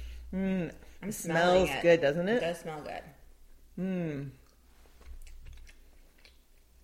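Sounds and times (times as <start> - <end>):
speech: 0.3 - 3.2, 3.8 - 4.4
chewing six-to-nine-month aged Gouda with vegetarian rennet and tyrosine crystals: 5.2 - 6.8.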